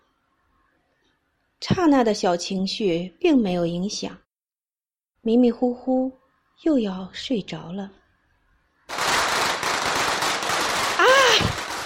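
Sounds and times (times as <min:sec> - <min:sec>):
speech: 0:01.6 - 0:04.2, 0:05.2 - 0:08.0
long string of firecrackers popping: 0:08.9 - 0:11.8.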